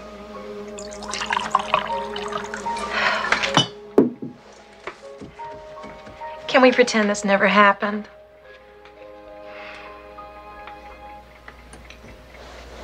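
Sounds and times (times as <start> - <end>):
drink poured into a glass: 0.8 - 3.7
speech: 6.6 - 8.2.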